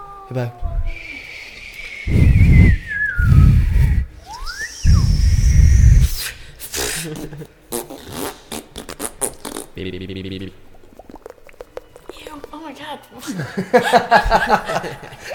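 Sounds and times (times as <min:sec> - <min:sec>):
speech: 0:00.3 - 0:01.2, 0:07.0 - 0:07.6, 0:09.8 - 0:10.7, 0:13.2 - 0:15.3
person whistling a tune: 0:00.7 - 0:06.3
low puffing bursts: 0:00.8 - 0:07.2
people chuckling and snickering: 0:06.8 - 0:07.8, 0:13.2 - 0:15.3.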